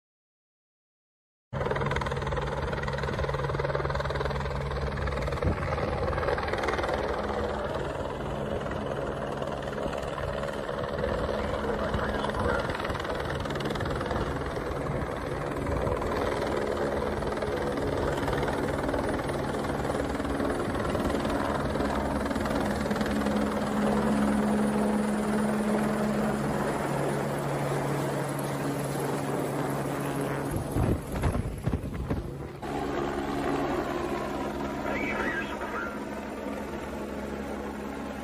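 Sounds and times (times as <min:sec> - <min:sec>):
helicopters flying overhead at extremely low level: 0:01.6 - 0:38.2.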